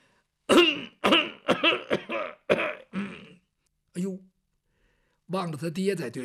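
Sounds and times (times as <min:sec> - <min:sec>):
man clearing his throat and coughing from an itchy throat: 0:00.5 - 0:03.4
speech: 0:05.3 - 0:06.2.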